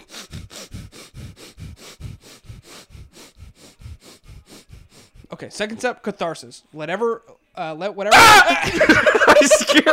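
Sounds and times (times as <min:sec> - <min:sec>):
rapid breathing through the nose during a breathing exercise: 0:00.0 - 0:05.6
speech: 0:05.4 - 0:09.9
laughter: 0:08.4 - 0:09.9.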